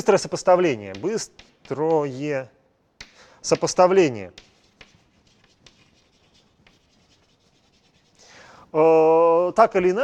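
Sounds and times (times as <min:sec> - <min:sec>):
speech: 0:00.0 - 0:02.6, 0:03.4 - 0:04.5, 0:08.7 - 0:10.0
light taps: 0:00.7 - 0:02.3, 0:03.0 - 0:06.9
pen scratching on paper while writing by hand: 0:00.9 - 0:02.3, 0:03.0 - 0:08.2.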